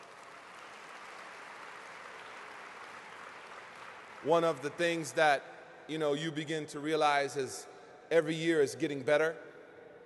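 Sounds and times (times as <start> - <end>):
large crowd applauding: 0.0 - 5.0
speech: 4.2 - 9.5.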